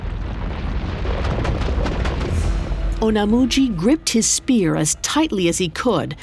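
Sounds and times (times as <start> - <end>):
thunderous rumble with deep low-end roar: 0.0 - 6.2
sharp crashing bursts: 0.4 - 4.8
speech: 3.0 - 6.2.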